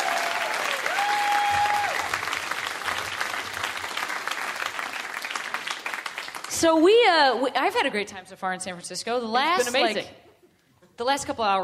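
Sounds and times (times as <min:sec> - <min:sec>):
crowd applauding: 0:00.0 - 0:06.6
speech: 0:06.6 - 0:10.2, 0:11.0 - 0:11.6.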